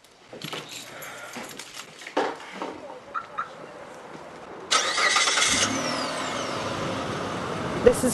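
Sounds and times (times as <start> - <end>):
car engine and road rumble on a street near Bridgeview: 0.0 - 8.1
car engine starting: 4.7 - 8.1.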